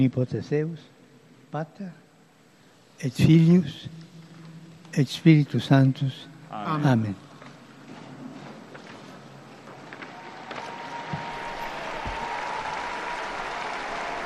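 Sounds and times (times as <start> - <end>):
speech: 0.0 - 2.0, 3.0 - 4.1, 4.9 - 7.2
large outdoor crowd clapping in a square: 9.9 - 14.2.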